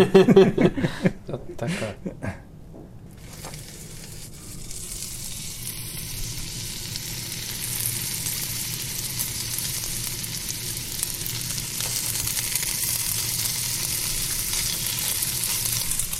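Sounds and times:
laughter: 0.0s - 2.4s
speech: 0.0s - 2.4s
sausage meat sizzling in a cast-iron pan: 3.2s - 16.1s.

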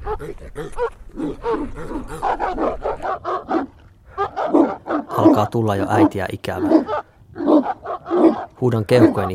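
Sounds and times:
pack of dogs barking frantically: 0.0s - 9.3s
speech: 0.2s - 3.2s, 5.3s - 7.0s, 8.6s - 9.3s.

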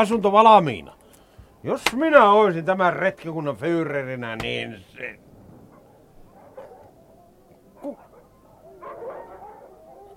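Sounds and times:
speech: 0.0s - 1.0s, 1.6s - 5.3s
dog barking: 5.7s - 7.2s, 7.8s - 10.1s.

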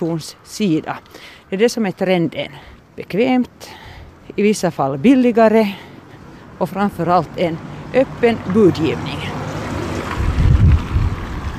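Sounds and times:
speech: 0.0s - 3.8s, 4.4s - 5.9s, 6.6s - 9.4s
strong wind buffeting the microphone outdoors: 9.7s - 11.5s.

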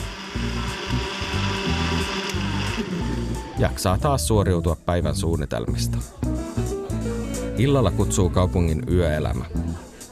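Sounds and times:
blender motor whirring and grinding: 0.0s - 3.6s
speech: 2.8s - 6.2s, 7.6s - 10.1s.

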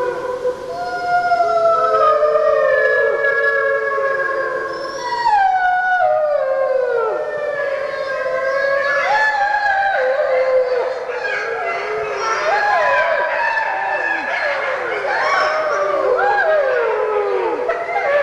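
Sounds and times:
dogs howling: 0.0s - 18.2s.

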